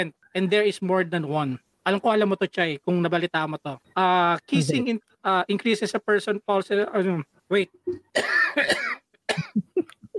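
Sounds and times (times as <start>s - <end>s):
speech: 0.0s - 9.7s
person coughing: 8.1s - 9.8s.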